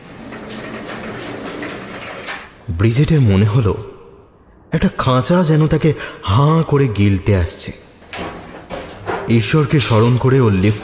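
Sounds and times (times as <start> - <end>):
lift doors opening loudly: 0.0 - 2.7, 8.0 - 10.8
speech: 2.8 - 3.9, 4.7 - 7.9, 9.3 - 10.8.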